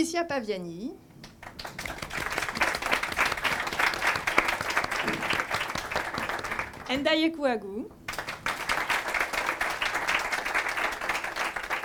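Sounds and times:
speech: 0.0 - 1.1, 6.9 - 8.0
crowd applauding: 1.4 - 6.9, 8.1 - 11.8.

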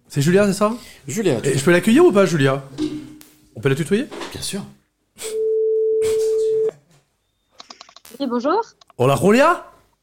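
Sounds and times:
speech: 0.1 - 2.9, 3.6 - 5.3, 8.2 - 9.7
telephone dialing beeps: 5.4 - 6.7.

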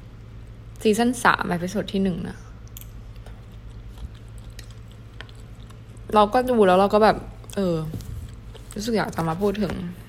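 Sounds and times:
steady low electrical hum: 0.0 - 10.0
speech: 0.8 - 2.4, 6.1 - 8.0, 8.8 - 10.0
chewing tortilla: 2.9 - 9.3.

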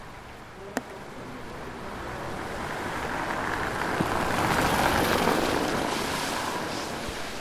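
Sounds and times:
autumn wind sweeping fallen dry leaves across wet asphalt in light drizzle at night: 2.4 - 7.3.

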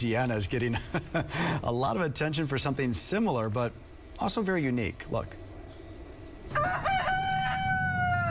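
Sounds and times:
speech: 0.0 - 5.4
rooster crowing: 6.5 - 8.2.

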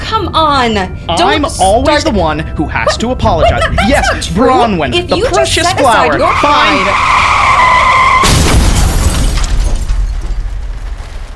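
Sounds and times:
speech: 0.1 - 7.9
car tyre squeal while skidding: 6.2 - 8.2
car crash impact in an ugly wreck: 7.5 - 11.3
crunching and debris noise from a car wreck: 8.1 - 11.3.

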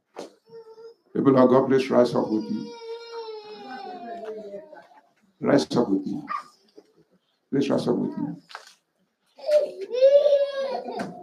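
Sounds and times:
speech: 1.2 - 2.8, 5.4 - 6.5, 7.5 - 8.6
baby crying: 2.2 - 4.8, 6.2 - 6.6, 9.4 - 11.2.

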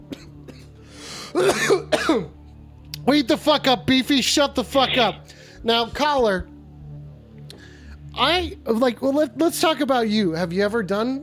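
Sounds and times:
man coughing harshly: 0.1 - 0.7, 1.3 - 2.4
breathy inhale: 0.8 - 1.4, 5.2 - 5.6, 7.5 - 8.1
speech: 3.1 - 6.5, 8.2 - 11.2.

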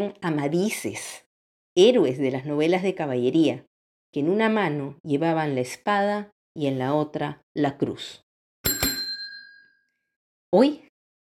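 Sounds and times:
speech: 0.0 - 1.2, 1.8 - 8.2, 10.5 - 10.8
bright bicycle-style bell ringing: 8.6 - 9.9.

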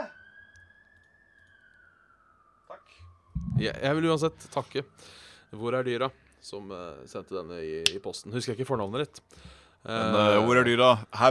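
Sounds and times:
emergency vehicle siren passing outside: 0.0 - 8.9
speech: 2.9 - 11.3
low rumble: 3.4 - 3.9.

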